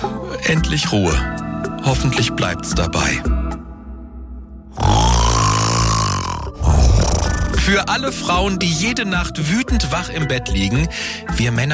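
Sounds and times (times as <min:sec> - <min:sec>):
speech: 0:00.5 - 0:03.5, 0:07.7 - 0:11.7
loud snoring: 0:04.7 - 0:07.6.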